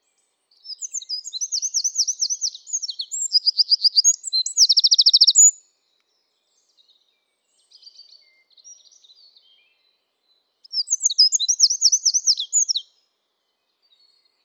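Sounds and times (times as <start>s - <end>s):
Eurasian wren song, Troglodytes troglodytes: 0.7s - 5.6s, 10.7s - 12.9s.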